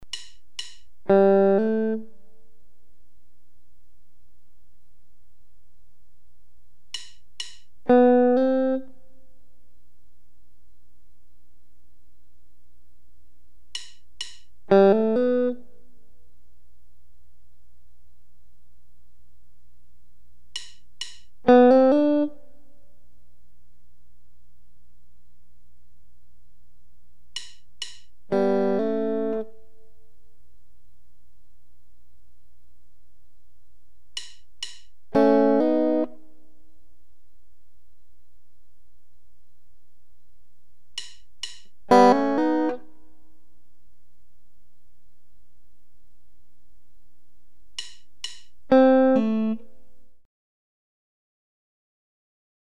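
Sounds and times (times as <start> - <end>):
guitar hammer-ons: 0.0 - 2.0, 6.9 - 8.9, 13.8 - 15.6, 20.5 - 22.4, 27.3 - 29.5, 34.1 - 36.3, 41.0 - 43.0, 47.8 - 49.6.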